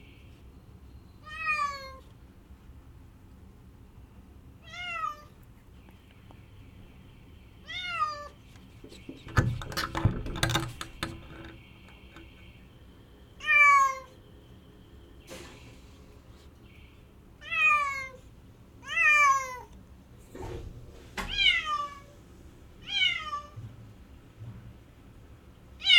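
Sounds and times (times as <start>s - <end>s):
cat giving plaintive meows: 1.2s - 2.0s, 4.6s - 5.3s, 7.6s - 8.4s, 17.4s - 18.2s, 18.8s - 19.7s, 21.3s - 22.1s, 22.8s - 23.6s
faint clicks and knocks: 8.5s - 12.6s.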